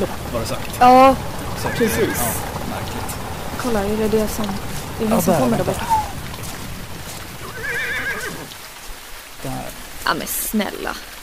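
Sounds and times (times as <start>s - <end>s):
speech: 0.0s - 3.0s, 3.6s - 6.0s, 9.4s - 11.1s
steady outdoor rumble: 0.0s - 8.6s
faint clopping of hooves and carriage wheels: 0.0s - 8.9s
horse whinnying: 1.6s - 2.4s, 7.4s - 8.5s.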